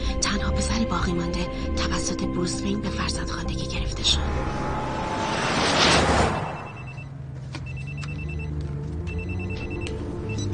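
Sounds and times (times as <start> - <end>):
speech: 0.8 - 5.2
steady low rumble: 2.9 - 7.1
telephone ringing in short electronic bursts: 6.5 - 10.5.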